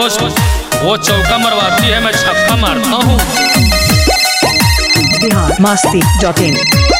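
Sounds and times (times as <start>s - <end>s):
speech: 0.1s - 3.6s, 5.2s - 6.9s
unanswered mobile phone ringtone with electronic melody: 3.1s - 6.9s.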